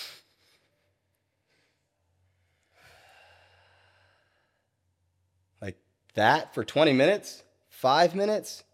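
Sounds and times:
person breathing slowly in and exhaling through the mouth: 0.0s - 4.9s
speech: 5.6s - 8.7s.

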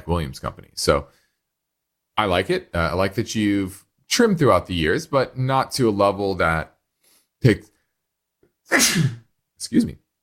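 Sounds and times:
speech: 0.0s - 1.2s, 2.2s - 6.7s, 7.4s - 7.7s, 8.7s - 10.0s
single loud human sneeze: 8.7s - 9.3s.

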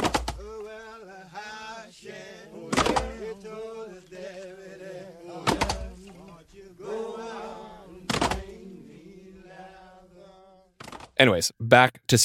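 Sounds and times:
several men singing a slow prison work song: 0.0s - 10.8s
heavy axe blows chopping logs: 2.7s - 3.2s
speech: 11.2s - 12.2s.

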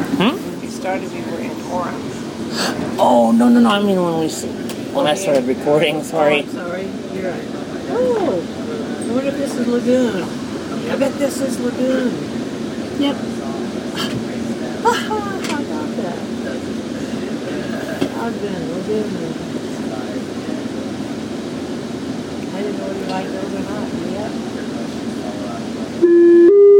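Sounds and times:
low rumble inside a moving commuter train in Utah: 0.0s - 26.1s
people murmuring inside a commuter train: 0.0s - 26.1s
speech: 0.2s - 12.3s, 13.0s - 13.4s, 14.0s - 15.4s, 18.3s - 19.5s, 22.6s - 24.6s.

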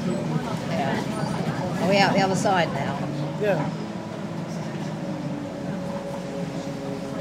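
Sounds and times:
train rumbling over a viaduct: 0.0s - 7.1s
speech: 1.9s - 3.8s.

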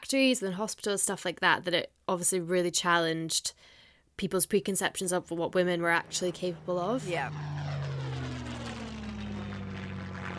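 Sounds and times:
speech: 0.0s - 7.9s
propeller engine of a World War II wood and canvas plane droning overhead: 5.2s - 10.3s.

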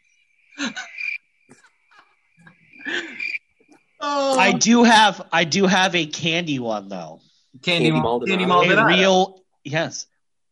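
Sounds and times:
high-pitched cricket chirping: 0.0s - 7.1s
laughter: 0.6s - 0.9s, 2.8s - 3.2s, 4.0s - 7.1s, 7.7s - 9.2s
rough nighttime croaking: 0.6s - 10.0s
speech: 4.1s - 10.1s.

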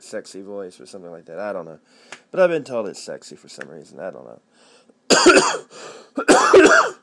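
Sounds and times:
speech: 0.1s - 6.9s
person with bronchitis coughing harshly: 5.1s - 7.0s.

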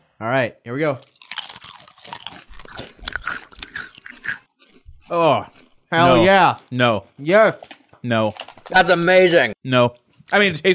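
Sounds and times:
speech: 0.2s - 1.1s, 5.1s - 10.7s
crunching and chewing on a spicy snack: 1.0s - 6.8s, 7.5s - 9.2s.

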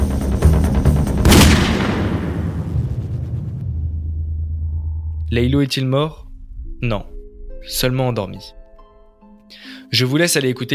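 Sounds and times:
music track: 0.0s - 10.7s
single gunshot with long decaying rumble: 1.2s - 4.2s
speech: 5.3s - 6.2s, 6.8s - 8.6s, 9.5s - 10.7s.

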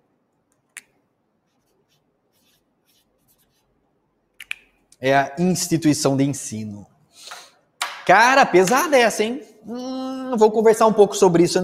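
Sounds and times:
red pen scratching on paper in short strokes: 1.4s - 3.7s
speech: 5.0s - 6.9s, 8.1s - 11.6s.

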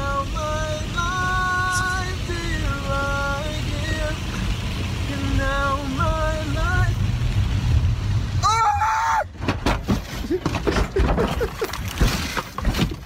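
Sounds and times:
road rumble: 0.0s - 13.0s
person screaming: 8.4s - 9.3s
car crash rolling over with heavy thumps and banging impacts: 9.3s - 13.0s.

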